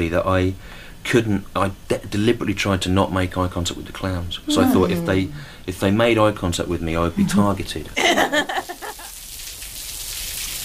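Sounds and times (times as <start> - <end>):
speech: 0.0 - 8.8
laughter: 7.2 - 9.1
steady rain falling on a little square: 8.2 - 10.6.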